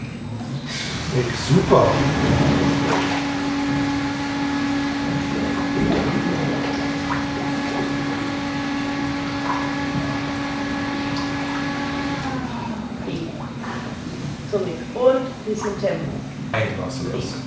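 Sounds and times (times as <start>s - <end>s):
pump pumping water into a treadmill tank: 0.0s - 17.4s
water sloshing and splashing in a treadmill tank: 0.0s - 17.4s
speech: 1.1s - 2.7s, 15.6s - 17.4s.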